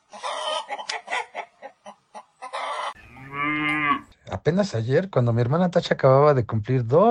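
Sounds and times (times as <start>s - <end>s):
chickens clucking: 0.0s - 4.0s
long low droning animal call: 2.9s - 4.1s
speech: 4.4s - 7.0s.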